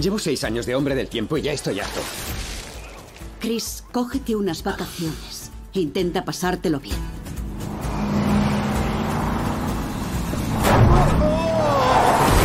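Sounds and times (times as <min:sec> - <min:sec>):
speech: 0:00.0 - 0:02.5, 0:03.4 - 0:07.2
car engine revving: 0:07.1 - 0:12.3.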